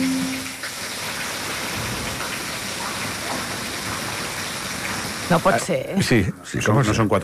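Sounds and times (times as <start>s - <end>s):
water cascading from ceiling inside a home: 0.0s - 7.2s
speech: 5.3s - 7.2s.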